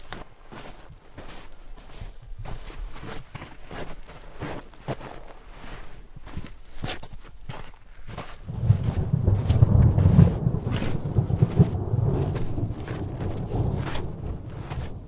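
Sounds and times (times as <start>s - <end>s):
faint wind-like noise: 0.0s - 15.0s
distant rolling thunder over mountains: 8.4s - 15.0s
light crackles: 8.4s - 15.0s.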